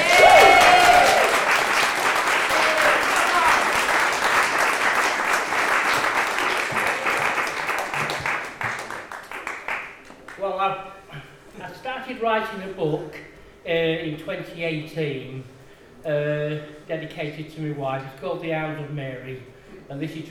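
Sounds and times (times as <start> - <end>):
audience applause welcoming a speaker to the stage: 0.0 - 10.4
speech: 14.1 - 20.2.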